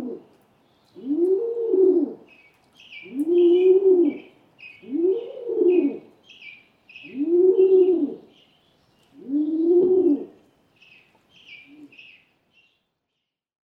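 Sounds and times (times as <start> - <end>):
Rock Pigeon cooing: 0.0 - 0.3, 1.0 - 2.3, 3.0 - 6.2, 7.0 - 8.3, 9.1 - 10.4, 11.5 - 12.1
small birds chirping: 0.2 - 1.4, 2.2 - 13.5.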